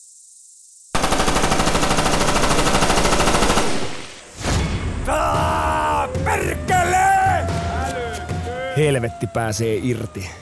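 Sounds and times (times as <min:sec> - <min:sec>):
automatic gunfire: 0:01.0 - 0:04.3
person shouting: 0:05.1 - 0:10.4
speech: 0:08.8 - 0:10.4.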